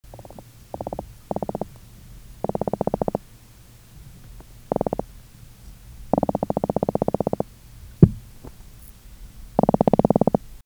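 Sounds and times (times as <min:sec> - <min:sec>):
croaker fish croaking: 0:00.1 - 0:01.7, 0:02.4 - 0:03.2, 0:04.7 - 0:05.1, 0:06.1 - 0:07.5, 0:09.6 - 0:10.4.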